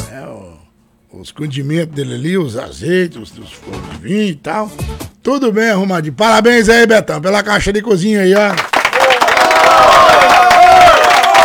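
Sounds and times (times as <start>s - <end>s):
speech: 1.1s - 8.7s
crowd applause: 8.4s - 11.4s.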